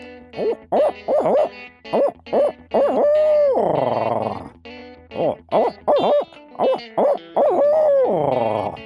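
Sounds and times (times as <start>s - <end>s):
man imitating barred owl hoots with his natural voice: 2.0s - 4.5s, 5.2s - 8.8s.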